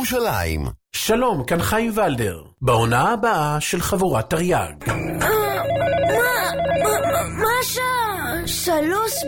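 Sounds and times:
speech: 0.0 - 6.0, 6.8 - 9.2
phone ringing with a warbling electronic tone: 4.9 - 9.2.

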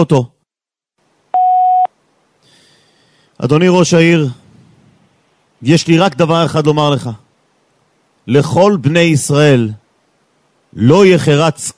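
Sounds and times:
speech: 0.0 - 0.4, 3.4 - 4.4, 5.6 - 7.2, 8.3 - 9.8, 10.7 - 11.7
voicemail beep on a phone call: 1.4 - 1.9.

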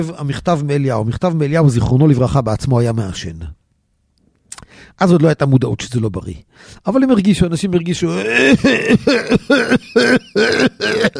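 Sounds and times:
speech: 0.0 - 3.6, 4.9 - 11.1
person imitating a heavy smoker's cough: 8.2 - 11.1.

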